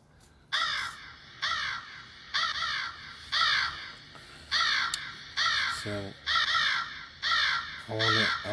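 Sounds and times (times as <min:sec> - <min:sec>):
crow cawing: 0:00.5 - 0:08.5
speech: 0:05.8 - 0:06.2, 0:07.9 - 0:08.5.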